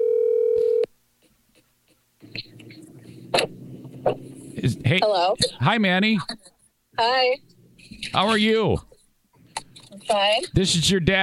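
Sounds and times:
loud telephone dial tone: 0.0 - 0.9
speech: 4.9 - 7.5, 8.1 - 8.9, 10.1 - 11.2.

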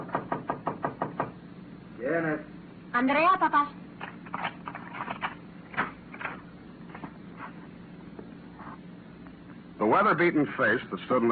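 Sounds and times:
knocking on a wooden door: 0.0 - 1.4
speech: 2.0 - 3.8, 9.9 - 11.3.

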